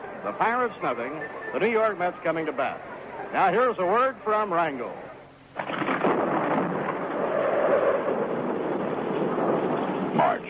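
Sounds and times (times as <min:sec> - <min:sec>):
speech: 0:00.2 - 0:05.7
loud roar of rain and wind: 0:05.5 - 0:10.4
rumbling crack of thunder: 0:05.6 - 0:10.4.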